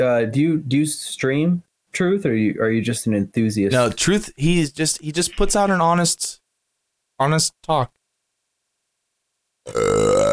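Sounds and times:
speech: 0.0s - 6.4s, 7.2s - 8.0s, 9.6s - 10.0s
loud sustained burp with low steady rumbling tone: 9.6s - 10.3s.

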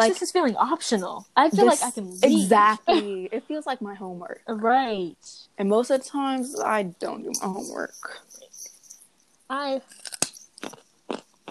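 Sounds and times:
speech: 0.0s - 8.4s, 9.5s - 10.8s
person chewing raw carrots near a microphone: 9.9s - 11.4s.

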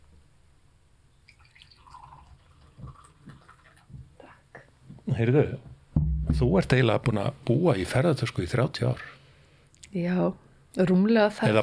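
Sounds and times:
tea pouring into a cup: 1.3s - 3.9s
speech: 5.2s - 5.7s, 6.4s - 9.2s, 9.9s - 11.6s.

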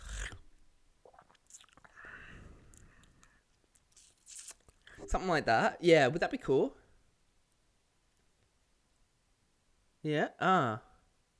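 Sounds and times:
crunchy chewing of crab: 0.0s - 0.4s, 1.1s - 2.0s, 2.6s - 5.0s
speech: 5.1s - 6.8s, 10.0s - 10.9s.

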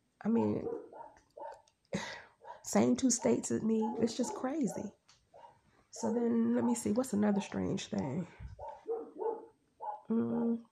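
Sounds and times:
speech: 0.2s - 0.8s, 2.6s - 5.0s, 6.0s - 8.5s, 10.1s - 10.7s
dogs barking: 0.3s - 1.7s, 2.4s - 5.6s, 6.6s - 7.5s, 8.6s - 10.1s.

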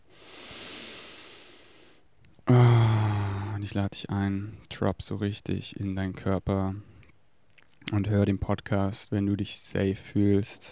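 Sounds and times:
deep breath drawn in slowly: 0.0s - 3.6s
speech: 3.6s - 6.9s, 7.9s - 10.7s.

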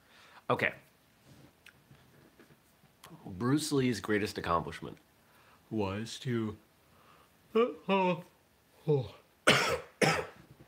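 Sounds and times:
speech: 0.5s - 0.9s, 3.3s - 5.1s, 5.7s - 6.6s, 7.5s - 9.7s
person with a lingering cough coughing while recovering from illness: 9.4s - 10.4s.

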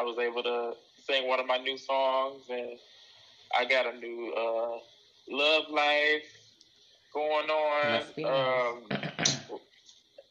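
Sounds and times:
speech: 0.0s - 6.4s, 7.1s - 9.6s
person clearing throat: 7.8s - 9.6s.

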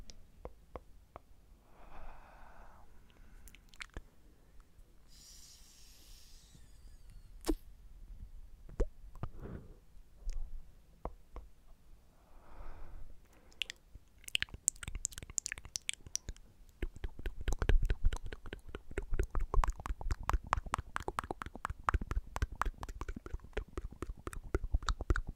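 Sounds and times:
vaping hisses of drawing and exhaling: 5.1s - 7.0s
dense fast crackle and popping: 13.6s - 25.3s.

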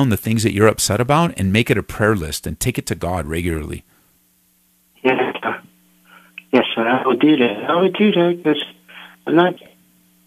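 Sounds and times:
speech: 0.0s - 3.9s, 5.0s - 5.6s, 6.5s - 9.7s
thin steady telephone line hum: 0.0s - 10.2s
narrow-band telephone voice breaking up: 5.0s - 5.7s, 6.4s - 9.8s.

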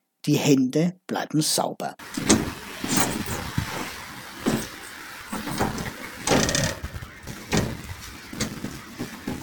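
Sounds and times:
speech: 0.2s - 2.9s
outdoor traffic noise: 2.0s - 9.4s
solar-powered public trash bin flap opened by foot pedal: 2.1s - 3.7s, 4.4s - 8.6s
mechanical scraping: 2.1s - 9.2s.

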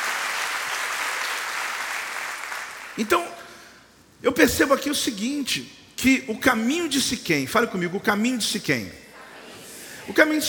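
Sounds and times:
crowd applauding: 0.0s - 3.0s
speech: 3.0s - 3.4s, 4.2s - 9.0s, 10.1s - 10.4s.

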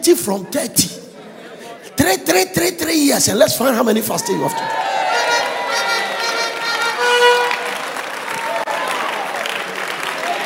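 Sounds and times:
speech: 0.0s - 1.1s, 2.0s - 5.0s
large crowd applauding: 4.6s - 10.4s.

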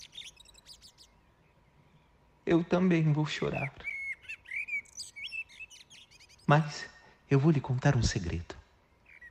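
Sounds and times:
bird chirping and tweeting: 0.0s - 6.8s, 8.8s - 9.2s
faint low hiss: 0.0s - 9.2s
speech: 2.5s - 3.8s, 6.5s - 8.6s.

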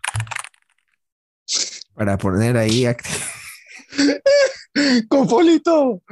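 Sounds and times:
person typing on a computer keyboard: 0.0s - 1.0s
speech: 2.0s - 3.2s, 4.9s - 6.0s
laughter: 3.0s - 6.0s.

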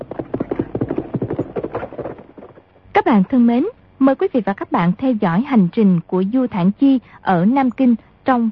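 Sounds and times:
galloping horse hoofbeats: 0.0s - 3.6s
speech: 3.0s - 8.5s.

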